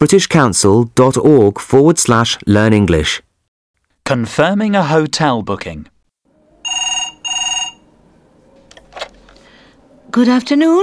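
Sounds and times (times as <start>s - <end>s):
speech: 0.0s - 3.3s, 4.0s - 5.9s, 10.1s - 10.8s
telephone double ring: 6.6s - 8.0s.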